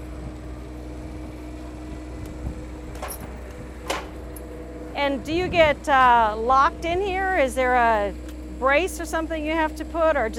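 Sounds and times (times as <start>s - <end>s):
steady electric motor hum of an automatic vehicle door lowering: 0.0s - 10.3s
soft mechanical clunks of an automatic vehicle door settling shut: 2.9s - 4.5s
speech: 5.0s - 10.3s.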